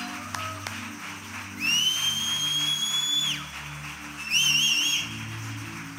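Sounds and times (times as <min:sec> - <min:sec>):
steady low music: 0:00.0 - 0:05.9
church audience whistling loudly during a morning service: 0:01.5 - 0:05.6.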